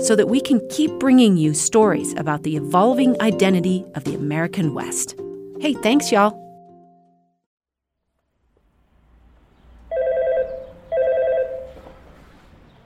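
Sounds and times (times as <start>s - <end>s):
speech: 0.0s - 6.4s
electronic doorbell ringing at a school's front door: 9.9s - 11.8s.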